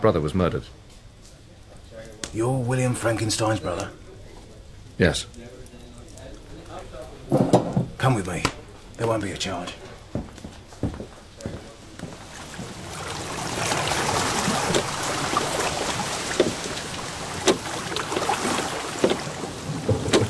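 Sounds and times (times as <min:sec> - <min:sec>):
speech: 0:00.0 - 0:01.0, 0:02.3 - 0:04.0, 0:05.0 - 0:05.6, 0:06.8 - 0:09.9
small boat crossing water, lapping and splashing: 0:12.0 - 0:20.2
sharp wooden knocks of a small boat: 0:16.3 - 0:16.8, 0:17.4 - 0:18.4, 0:19.0 - 0:20.2.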